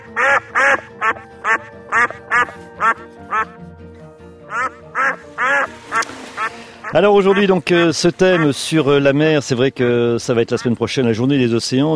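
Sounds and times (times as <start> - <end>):
duck quacking: 0.0 - 3.6, 4.5 - 8.6, 10.5 - 10.8
speech: 6.9 - 11.9.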